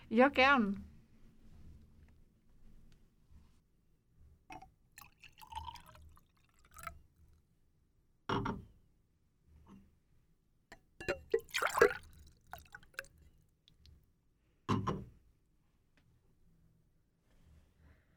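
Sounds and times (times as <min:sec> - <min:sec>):
speech: 0:00.1 - 0:00.9
light clinks of glass: 0:04.5 - 0:06.9, 0:10.7 - 0:13.1
drink poured into a glass: 0:04.5 - 0:07.0, 0:11.1 - 0:13.2.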